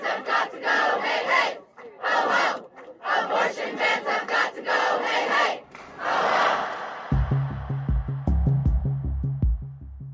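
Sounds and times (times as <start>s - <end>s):
crowd of protesters chanting slogans over abortion rights outside the US Supreme Court: 0.0s - 7.8s
steady pulsing beat: 7.1s - 10.1s.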